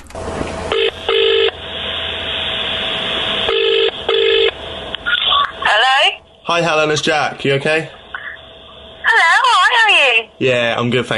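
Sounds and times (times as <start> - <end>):
telephone ringing tone down the line: 0.7 - 1.6, 3.5 - 4.6
tones as the call connects: 0.7 - 1.6, 3.4 - 10.6
steady telephone line hiss: 1.6 - 8.8
speech: 6.5 - 8.0, 10.4 - 11.1.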